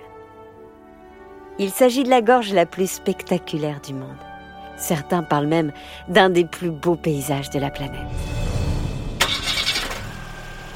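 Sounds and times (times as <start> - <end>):
speech: 1.6 - 8.4
camper van engine starting: 8.2 - 10.7.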